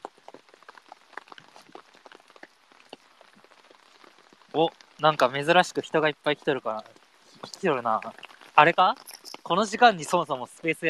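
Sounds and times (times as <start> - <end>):
steady rain pattering on a hard surface: 0.0 - 10.8
speech: 4.6 - 10.8.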